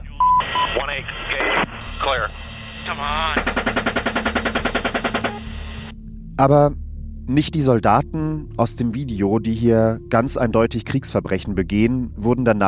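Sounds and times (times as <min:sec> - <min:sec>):
garbled radio voices: 0:00.0 - 0:03.7, 0:04.6 - 0:05.9
radio static: 0:00.0 - 0:05.9
speech: 0:00.8 - 0:03.6, 0:06.4 - 0:12.6
machine gun fire through a band-limited radio channel: 0:03.2 - 0:05.4.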